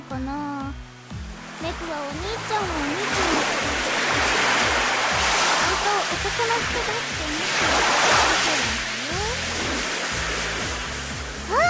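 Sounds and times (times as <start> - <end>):
speech: 0.1 - 0.9, 1.6 - 4.3, 5.9 - 9.2
large ocean wave crashing on shore: 1.6 - 10.8.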